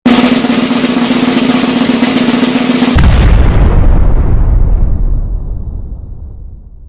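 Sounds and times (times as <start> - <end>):
drum roll: 0.1 - 6.7
boom: 2.9 - 6.8.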